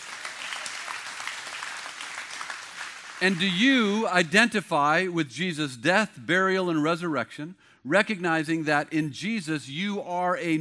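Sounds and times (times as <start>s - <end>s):
audience applauding in a large room: 0.0s - 3.6s
speech: 3.2s - 10.5s.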